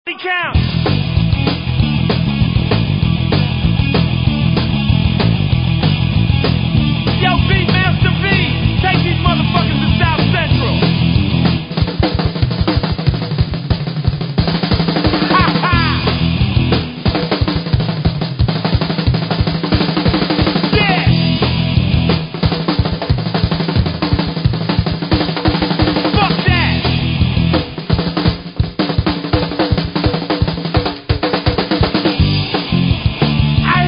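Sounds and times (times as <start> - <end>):
drum kit solo: 0.5 - 33.8.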